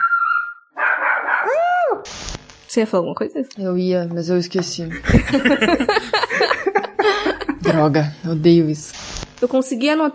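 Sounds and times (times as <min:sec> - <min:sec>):
dog giving high-pitched yappy whining barks and yelps: 0:00.7 - 0:01.6
speech: 0:02.8 - 0:06.5, 0:07.7 - 0:10.1
laughter: 0:04.9 - 0:08.1.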